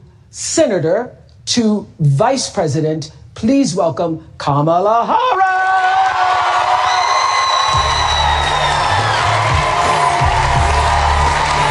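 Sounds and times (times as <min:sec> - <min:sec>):
speech: 0:00.3 - 0:05.5
large crowd screaming and cheering at a rally: 0:05.7 - 0:11.7.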